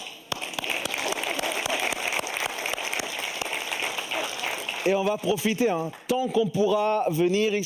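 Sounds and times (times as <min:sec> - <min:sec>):
applause of many hands: 0:00.0 - 0:06.8
speech: 0:04.8 - 0:07.6.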